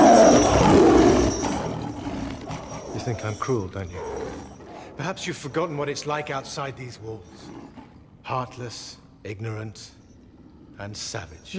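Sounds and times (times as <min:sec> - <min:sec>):
lion cub roaring: 0:00.0 - 0:08.3
speech: 0:03.1 - 0:04.1, 0:05.0 - 0:10.0, 0:10.8 - 0:11.5.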